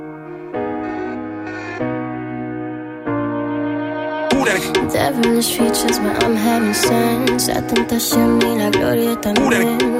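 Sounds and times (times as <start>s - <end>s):
sustained synth chords of a pop track: 0.0s - 9.9s
speech: 4.4s - 9.9s.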